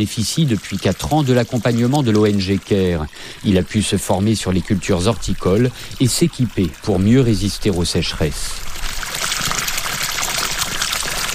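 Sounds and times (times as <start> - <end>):
speech: 0.0 - 9.0
water from a deep well pouring and rushing on a small horticultural farm: 0.0 - 11.3.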